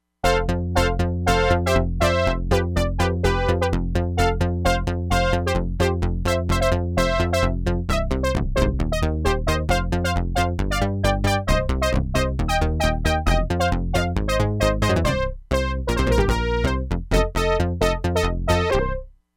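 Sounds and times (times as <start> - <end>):
fast brass sequencer bass on a Crumar Bit 99: 0.2 - 19.1.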